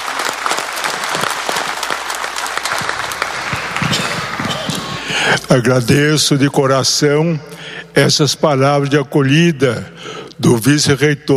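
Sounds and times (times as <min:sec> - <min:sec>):
congregation applauding: 0:00.0 - 0:05.4
speech: 0:05.3 - 0:11.3.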